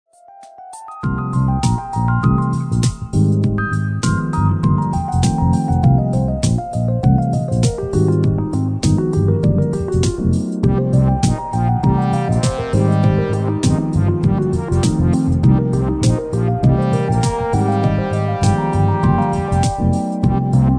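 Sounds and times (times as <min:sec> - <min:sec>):
smooth jazz in a cafe: 0:01.0 - 0:20.7.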